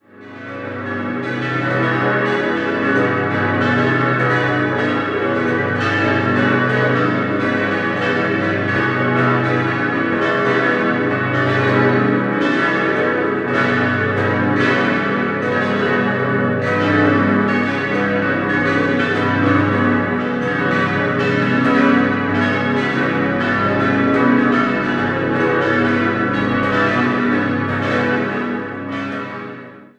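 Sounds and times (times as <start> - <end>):
bells ringing in Sarnen: 0.3 - 29.7.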